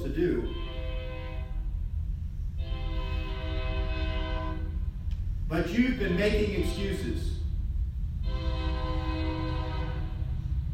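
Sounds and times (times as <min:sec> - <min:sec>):
train horn blast: 0:00.3 - 0:01.8, 0:02.6 - 0:04.9, 0:08.2 - 0:10.7
heavy low rumble of a passing train: 0:00.5 - 0:10.7
speech: 0:05.5 - 0:07.4.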